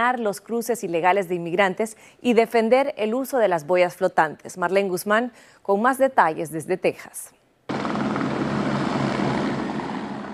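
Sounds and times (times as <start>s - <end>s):
speech: 0.0s - 7.4s
helicopter engine and rotor drone flying overhead: 7.7s - 10.3s.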